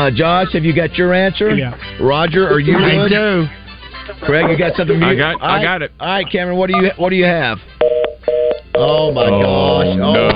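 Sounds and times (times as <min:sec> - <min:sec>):
speech: 0:00.0 - 0:07.7, 0:08.8 - 0:10.3
steady electronic phone-line tone: 0:07.8 - 0:09.3.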